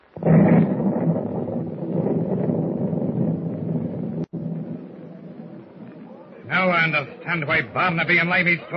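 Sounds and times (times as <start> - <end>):
continuous heavy rumbling roar: 0.0 - 6.2
loud explosion booming: 0.0 - 6.4
speech: 6.8 - 8.7.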